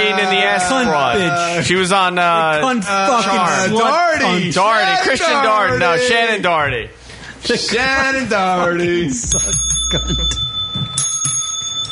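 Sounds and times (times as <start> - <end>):
speech: 0.0 - 10.5
bell ringing with a bright metallic tone: 9.2 - 11.9.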